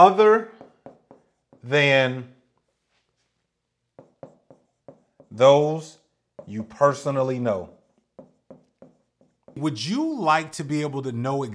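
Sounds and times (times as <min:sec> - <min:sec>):
speech: 0:00.0 - 0:00.6, 0:01.6 - 0:02.4, 0:05.3 - 0:07.8, 0:09.6 - 0:11.5
handwriting scratching strokes: 0:00.0 - 0:02.0, 0:03.9 - 0:10.0.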